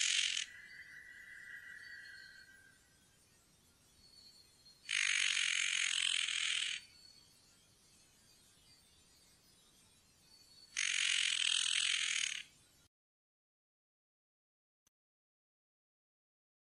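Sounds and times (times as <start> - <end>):
spotted nutcracker rasping calls: 4.9 - 6.8, 10.8 - 12.4.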